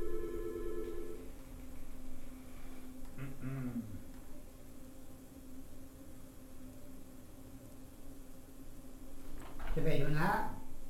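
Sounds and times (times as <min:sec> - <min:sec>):
telephone ringing in a short electronic burst: 0:00.0 - 0:01.3
speech: 0:09.8 - 0:10.5.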